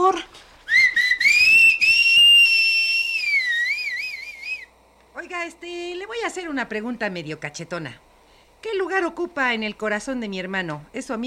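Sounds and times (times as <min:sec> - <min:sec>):
loud unmelodic human whistle blown into a person's ears: 0:00.7 - 0:04.7
speech: 0:06.5 - 0:08.1, 0:08.9 - 0:11.2.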